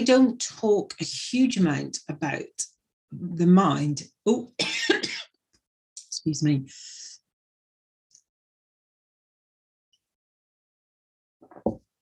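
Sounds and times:
speech: 0.0 - 5.3, 6.2 - 7.0
harsh coughs: 4.6 - 5.4.

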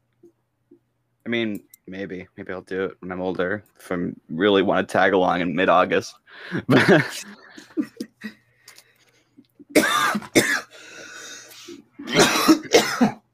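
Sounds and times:
speech: 1.3 - 8.4
person laughing: 6.6 - 8.4
wet phlegmy cough: 9.7 - 10.7, 12.0 - 13.2.

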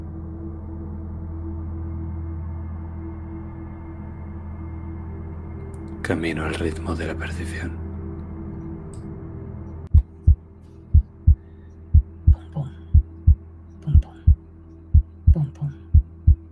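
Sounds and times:
low steady hum: 0.0 - 16.5
speech: 6.1 - 7.8
heartbeat echoing in tunnels: 9.9 - 16.5.

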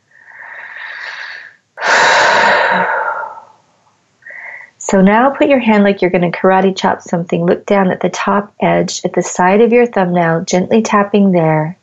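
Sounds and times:
big deep breaths during an EFT tapping session: 0.0 - 3.6, 4.2 - 4.8
speech: 4.9 - 11.8.

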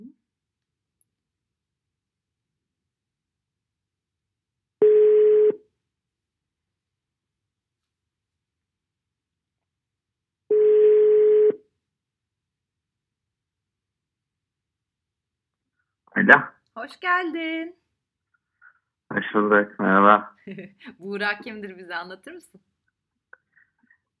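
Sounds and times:
ringback tone of an outgoing telephone call: 4.8 - 5.6, 10.5 - 11.6
speech: 16.2 - 17.8, 19.1 - 22.7
laughter: 20.5 - 21.1.

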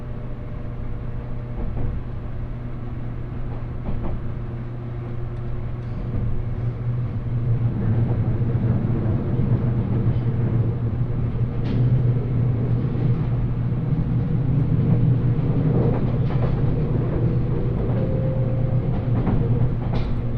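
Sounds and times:
limited express train carriage rumble and hum: 0.0 - 20.3.

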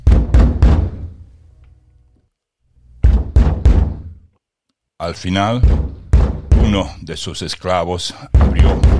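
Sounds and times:
loud heavy knocking on a door: 0.0 - 1.1, 3.0 - 4.1, 5.6 - 6.9, 8.3 - 8.9
speech: 5.0 - 6.0, 6.7 - 8.9.

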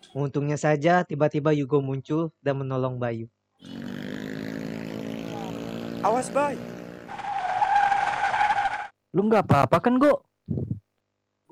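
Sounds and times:
speech: 0.1 - 3.9, 6.0 - 6.8, 9.2 - 10.7
motorcycle speeding: 3.6 - 8.6
tire screech from a vehicle skidding hard: 3.6 - 8.9.

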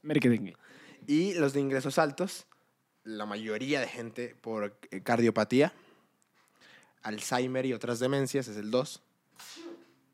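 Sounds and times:
speech: 0.0 - 5.8, 7.0 - 9.7
single sharp breathy sneeze: 9.4 - 10.0.

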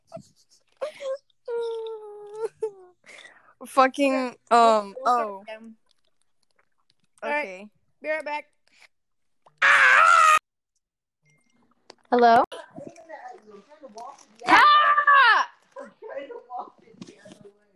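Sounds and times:
speech: 3.6 - 5.8, 7.2 - 8.6, 12.1 - 16.8
loud high-pitched screams: 9.6 - 10.4, 14.5 - 15.5.

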